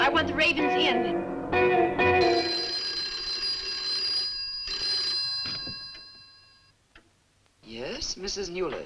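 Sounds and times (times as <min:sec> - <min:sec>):
speech: 0:00.2 - 0:02.5, 0:08.2 - 0:08.8
telephone bell ringing: 0:02.1 - 0:06.7.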